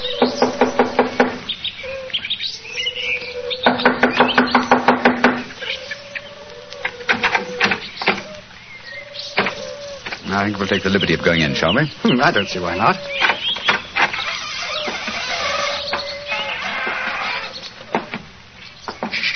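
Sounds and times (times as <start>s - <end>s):
chirping: 0.0s - 19.3s
sharp knocking on a door: 3.7s - 5.5s
speech: 10.4s - 13.2s.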